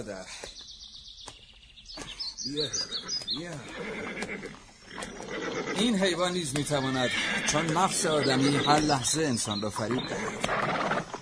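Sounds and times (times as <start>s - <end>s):
speech: 0.0s - 0.7s, 1.9s - 11.1s
birds chirping: 0.0s - 11.2s
horse whinnying: 2.7s - 9.0s, 9.8s - 11.2s.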